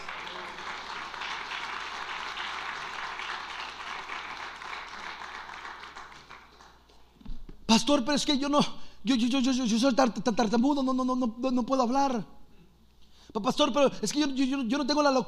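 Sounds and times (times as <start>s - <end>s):
church audience applause: 0.0s - 7.1s
speech: 7.7s - 12.4s, 13.3s - 15.2s.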